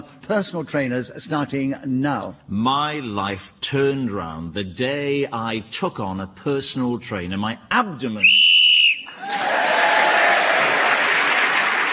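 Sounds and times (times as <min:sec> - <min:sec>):
speech: 0:00.3 - 0:08.4
shrill whistle blast ending a round of a game: 0:08.2 - 0:09.2
audience applause and cheering: 0:09.0 - 0:11.9.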